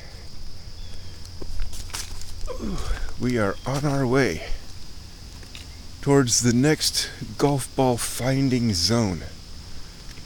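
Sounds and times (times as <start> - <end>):
low steady background: 0.0 - 10.2
footsteps climbing up a riverbank: 1.2 - 2.5, 3.1 - 5.7
speech: 2.6 - 4.6, 6.0 - 9.4.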